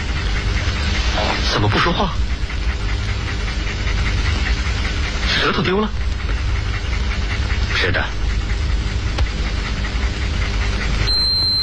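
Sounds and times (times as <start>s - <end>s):
dog panting: 0.0s - 11.1s
noisy hum: 0.0s - 11.6s
speech: 1.6s - 2.3s, 5.4s - 6.0s, 7.8s - 8.2s.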